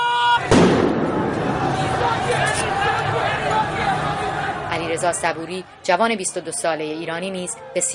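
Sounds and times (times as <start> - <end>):
large agitated crowd of protesters roaring and babbling: 0.0 - 7.9
gunshot fired by armed Basij forces from a rooftop in Tehran: 0.5 - 1.6
speech: 5.0 - 7.9.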